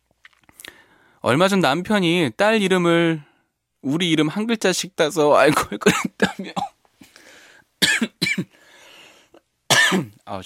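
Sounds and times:
speech: 0:01.2 - 0:06.7, 0:09.9 - 0:10.4
person coughing after choking while talking: 0:05.5 - 0:06.8, 0:07.8 - 0:08.5, 0:09.7 - 0:10.2.

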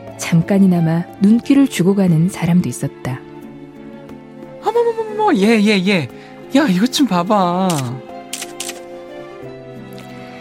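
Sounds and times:
speech: 0:00.2 - 0:03.2, 0:05.3 - 0:08.1
small digital camera shutter clicks: 0:07.7 - 0:08.9.

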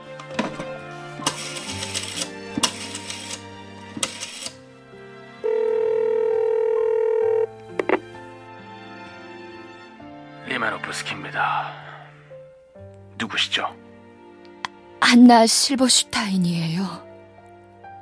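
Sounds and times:
soft music: 0:00.0 - 0:18.0
steady telephone line ringing tone: 0:05.4 - 0:08.0
speech: 0:10.6 - 0:11.8, 0:13.2 - 0:13.8, 0:15.1 - 0:17.1.

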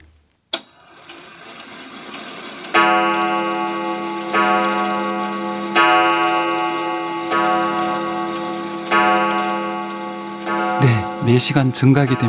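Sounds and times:
grandfather clock striking the hour with deep resonant chimes: 0:01.4 - 0:12.2
soft mechanical tick of a grandfather clock: 0:02.7 - 0:12.2
speech: 0:11.3 - 0:12.2.

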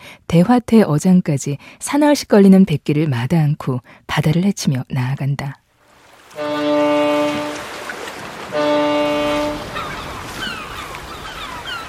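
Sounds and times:
speech: 0:00.3 - 0:05.6
ship horn blasts at a fishing harbor: 0:06.3 - 0:09.8
seagulls crying at a fishing harbor: 0:06.4 - 0:11.8.

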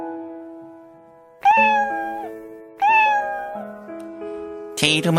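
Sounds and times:
cat meowing: 0:01.5 - 0:03.8
speech: 0:04.9 - 0:05.1.

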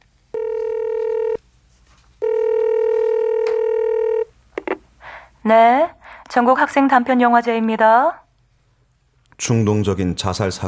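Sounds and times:
mobile phone ringing tones of a placed call: 0:00.3 - 0:01.4, 0:02.2 - 0:04.3
speech: 0:05.5 - 0:08.2, 0:09.4 - 0:10.6.

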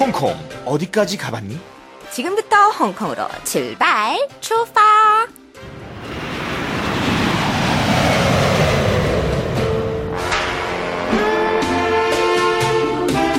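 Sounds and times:
speech: 0:00.2 - 0:05.4
747 jet airplane roaring: 0:05.6 - 0:13.3.

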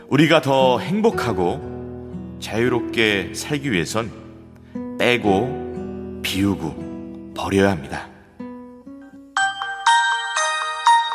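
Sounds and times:
speech: 0:00.1 - 0:01.7, 0:02.4 - 0:04.2, 0:05.0 - 0:05.6, 0:06.2 - 0:06.8, 0:07.4 - 0:08.1
melodic electronic ringtone of an incoming phone call: 0:09.4 - 0:11.1.

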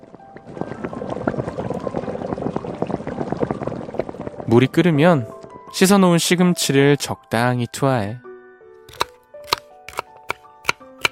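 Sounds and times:
water poured into a cooking pot for doenjang soup: 0:00.0 - 0:05.4
speech: 0:04.5 - 0:08.2.

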